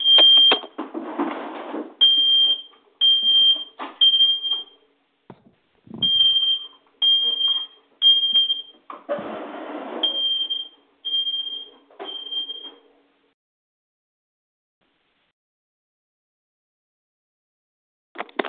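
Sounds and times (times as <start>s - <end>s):
home smoke detector beeping without a fire: 0.0s - 0.7s, 2.0s - 4.8s, 6.0s - 8.8s, 10.0s - 12.8s.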